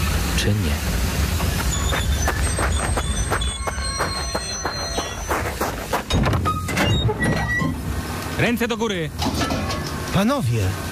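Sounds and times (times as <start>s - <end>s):
departing train hissing: 0.0s - 6.1s
train departing from Suchedniów rumbling: 0.0s - 10.9s
speech: 0.4s - 1.0s, 8.4s - 9.4s, 10.2s - 10.9s
clanking train wheel beats: 1.3s - 7.8s
sharp metallic squeals of train: 1.5s - 7.8s.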